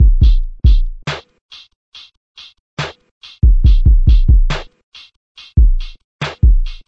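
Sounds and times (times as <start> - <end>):
dark kick drum in a 140 bpm trap beat: 0.0 - 1.0, 3.4 - 4.6, 5.6 - 6.8
hi-hat in a 140 bpm trap beat: 0.0 - 6.8.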